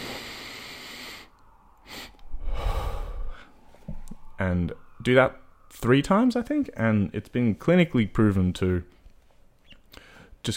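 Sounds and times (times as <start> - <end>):
deep inhale and long exhale through the mouth in a calming breathing exercise: 0.0 - 5.9, 9.9 - 10.4
speech: 4.4 - 9.0.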